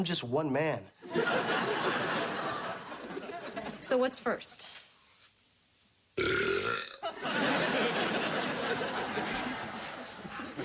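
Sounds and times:
speech: 0:00.0 - 0:02.0, 0:03.8 - 0:04.8
laughter: 0:01.0 - 0:03.8, 0:07.0 - 0:10.6
loud long rumbling belch: 0:06.2 - 0:07.0.

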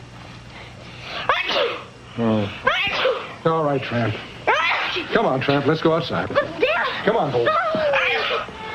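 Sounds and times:
person sneezing: 0:01.3 - 0:01.9, 0:02.8 - 0:03.3
speech: 0:03.4 - 0:04.3, 0:05.0 - 0:08.6.

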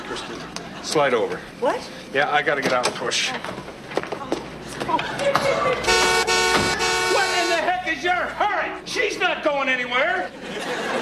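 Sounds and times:
laughter: 0:00.0 - 0:01.2, 0:04.8 - 0:06.1, 0:10.1 - 0:10.9
speech: 0:00.2 - 0:03.8, 0:04.9 - 0:06.1, 0:08.0 - 0:10.9
car horn blaring: 0:05.8 - 0:07.9
scattered thumps: 0:05.9 - 0:06.9.

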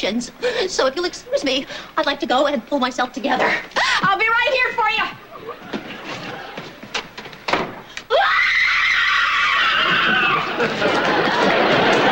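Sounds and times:
speech: 0:00.0 - 0:05.6
laughter: 0:05.2 - 0:06.9, 0:09.6 - 0:12.1
woman screaming loudly: 0:08.1 - 0:10.5.

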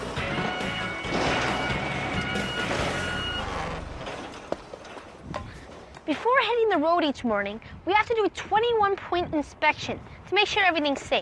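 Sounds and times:
sharp metallic clunks of fifth wheel hooking to kingpin: 0:00.0 - 0:05.8
large diesel semi truck engine rumbling while backing up: 0:00.0 - 0:06.0
tonal reversing beeps of a semi truck: 0:00.4 - 0:03.8
speech: 0:06.2 - 0:11.2.

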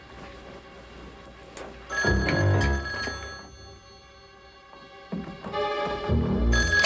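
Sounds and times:
old-fashioned telephone bell ringing: 0:01.9 - 0:04.7, 0:06.5 - 0:06.8.

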